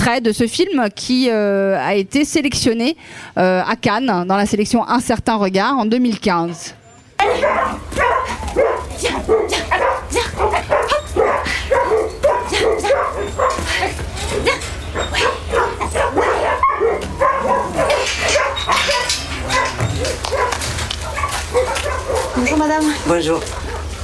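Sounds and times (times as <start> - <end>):
speech: 0.1 - 7.8, 22.4 - 23.6
puppy yipping and barking: 6.5 - 24.0.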